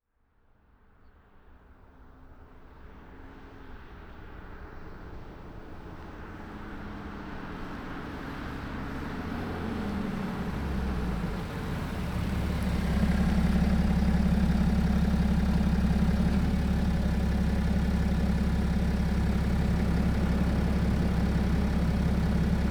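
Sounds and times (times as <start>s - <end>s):
BMW F12 640D Gran Coupe driving away on wet asphalt: 6.3s - 22.6s
BMW F12 640D Gran Coupe engine switched off and on on wet asphalt: 9.4s - 22.6s.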